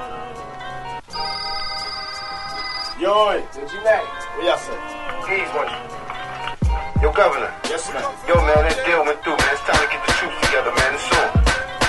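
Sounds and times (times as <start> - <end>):
phone ringing with electronic ringtone: 1.1 - 3.4
speech: 3.0 - 6.0, 7.0 - 11.4.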